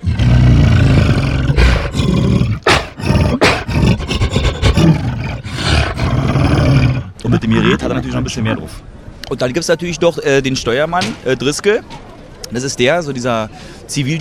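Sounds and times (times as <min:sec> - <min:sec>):
monkey roar processed through a harmonizer: 0:00.0 - 0:08.2
speech: 0:07.4 - 0:14.1.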